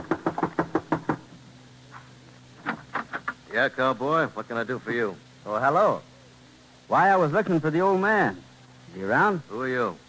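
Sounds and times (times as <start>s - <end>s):
firm knocks on a wooden front door: 0.0s - 1.3s
speech: 3.6s - 6.1s, 6.9s - 10.0s.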